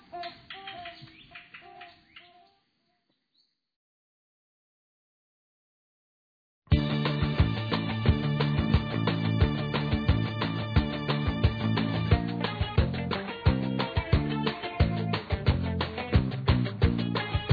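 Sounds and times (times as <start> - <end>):
pair of toucan barbets duetting in nasal calls: 0.3 - 2.6
loud music: 6.7 - 17.5.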